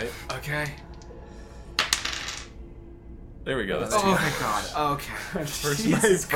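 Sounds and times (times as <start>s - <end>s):
speech: 0.4s - 0.9s, 3.4s - 6.3s
dice rolling on a hard table: 1.8s - 2.5s.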